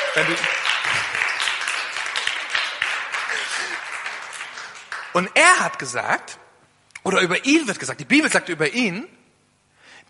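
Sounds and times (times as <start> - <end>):
crowd clapping: 0.0 - 5.7
speech: 0.2 - 1.1, 5.2 - 6.4, 7.0 - 9.2.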